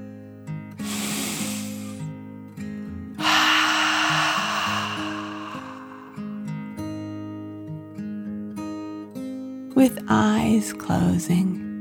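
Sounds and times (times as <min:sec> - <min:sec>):
deep breath in and out: 0:00.8 - 0:02.1, 0:03.2 - 0:06.6
speech: 0:09.8 - 0:11.6.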